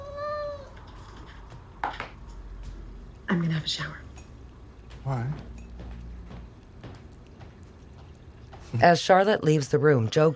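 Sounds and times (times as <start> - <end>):
cat meowing while being fed: 0.0 - 0.8
speech: 3.3 - 4.0, 5.0 - 5.5, 8.7 - 10.3.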